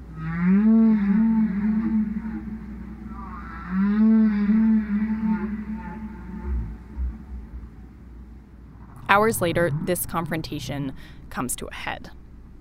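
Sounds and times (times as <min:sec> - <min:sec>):
recorded whale song blasted loudly: 0:00.0 - 0:10.8
steady low rumble: 0:04.6 - 0:12.5
speech: 0:09.2 - 0:12.2.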